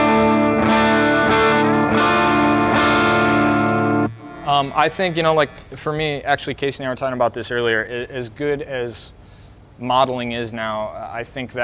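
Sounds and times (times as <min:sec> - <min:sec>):
slightly overdriven electric guitar chords through an amplifier: 0:00.0 - 0:05.8
speech: 0:04.6 - 0:09.2, 0:09.8 - 0:11.6.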